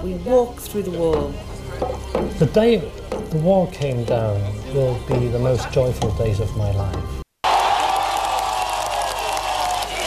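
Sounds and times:
speech: 0:00.0 - 0:07.2
crowd clapping: 0:07.4 - 0:10.0
crowd whooping: 0:07.4 - 0:10.0
large crowd in West Berlin shouting and cheering ecstatically: 0:07.4 - 0:10.0.

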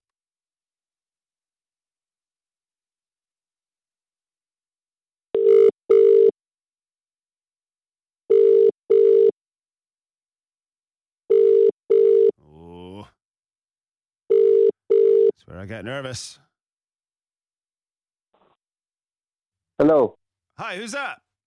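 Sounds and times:
telephone ringing tone on the line as a call is dialed out: 0:05.3 - 0:06.4, 0:08.3 - 0:09.4, 0:11.3 - 0:12.4, 0:14.3 - 0:15.4
speech: 0:15.5 - 0:16.5, 0:19.8 - 0:21.2.

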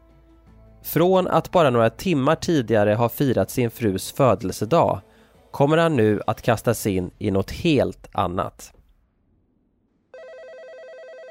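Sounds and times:
speech: 0:00.8 - 0:08.8
landline telephone bell ringing: 0:10.1 - 0:11.2.

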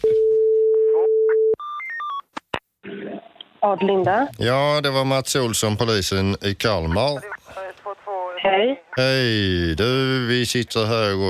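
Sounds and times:
steady telephone dial tone: 0:00.0 - 0:01.7
brief burst of rough static-like noise: 0:02.8 - 0:11.2
speech: 0:03.6 - 0:07.4, 0:08.4 - 0:11.2.

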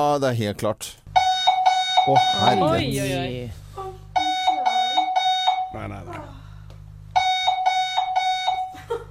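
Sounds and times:
speech: 0:00.0 - 0:01.0, 0:02.0 - 0:03.6
low buzzing vibration from a small vibrating pad under a pillow: 0:01.0 - 0:09.0
loud piercing alarm clock beeping: 0:01.2 - 0:02.9, 0:04.2 - 0:05.8, 0:07.2 - 0:08.8.

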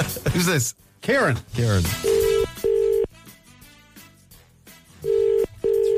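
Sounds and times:
quiet music: 0:00.0 - 0:05.9
speech: 0:00.3 - 0:02.1
phone ringback tone while calling a local honey supplier: 0:02.0 - 0:03.1, 0:05.0 - 0:05.9.

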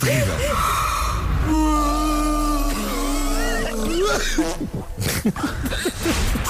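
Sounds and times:
person yawning with a wavering, moaning voice: 0:00.2 - 0:04.6
laughter: 0:03.1 - 0:06.4
speech: 0:04.3 - 0:06.3.

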